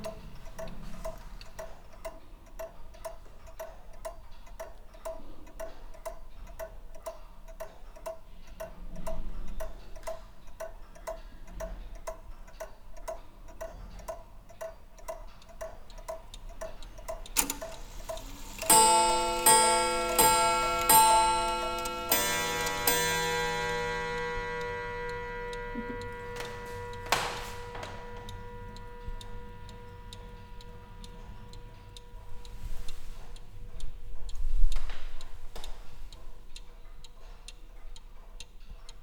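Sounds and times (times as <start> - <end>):
short-pendulum clock ticking: 0.0 - 39.0
louder bright chiming or ringing sound: 17.4 - 33.3.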